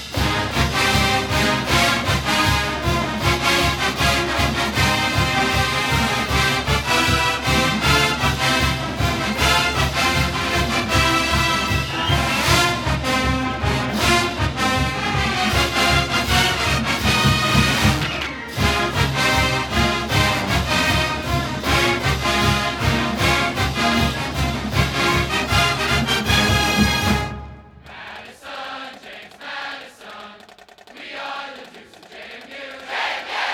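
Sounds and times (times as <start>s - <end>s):
fight song: 0.1s - 33.5s.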